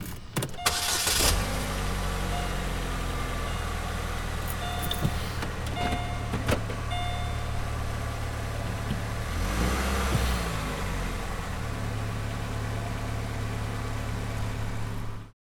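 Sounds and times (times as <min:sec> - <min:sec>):
car starting: 0:00.0 - 0:15.3.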